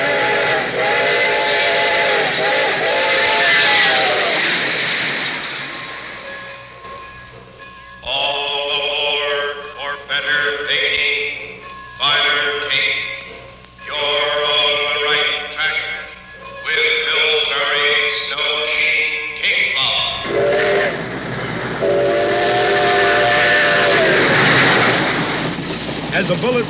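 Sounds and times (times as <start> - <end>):
steam train chord-like whistle blasts: 0.0 - 4.7, 9.0 - 21.1, 21.7 - 25.1
steam train wheels rumbling on rails: 0.0 - 26.6.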